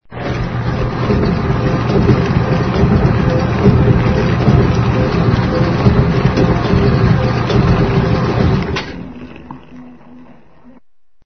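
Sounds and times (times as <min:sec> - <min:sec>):
industrial factory noise: 0:00.1 - 0:10.1.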